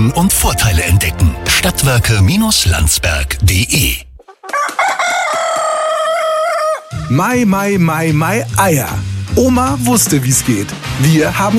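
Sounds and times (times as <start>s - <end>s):
speech: 0.0s - 4.1s, 7.1s - 11.5s
rooster crowing: 4.3s - 7.1s.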